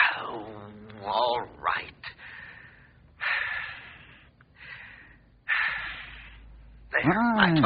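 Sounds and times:
deep airy breaths: 2.1s - 6.9s
speech: 7.0s - 7.6s.

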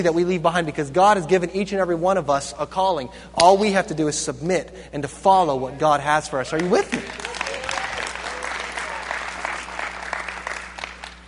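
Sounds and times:
speech: 0.0s - 7.2s
audience clapping: 6.6s - 11.2s.

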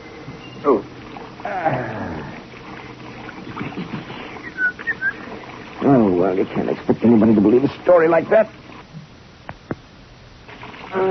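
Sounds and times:
faint chirps: 0.0s - 2.4s, 3.2s - 5.5s
shower water running: 0.0s - 9.0s
speech: 0.6s - 0.9s, 6.2s - 8.6s
whistling sliding tones: 4.1s - 5.4s.

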